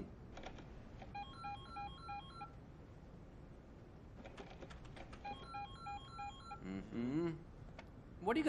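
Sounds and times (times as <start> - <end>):
telephone ringing with rapid warbling electronic tones: 1.1 - 2.6, 5.2 - 6.6
speech: 8.2 - 8.4.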